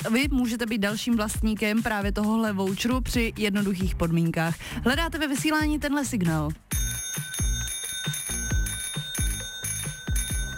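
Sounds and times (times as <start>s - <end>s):
speech: 0.0s - 6.7s
bicycle bell ringing: 6.7s - 10.5s.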